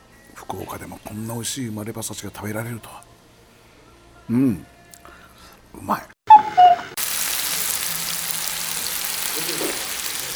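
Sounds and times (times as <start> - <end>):
speech: 0.5 - 3.1, 4.3 - 4.7, 5.8 - 6.2
meat and vegetables sizzling on a hot steak plate: 7.0 - 10.3.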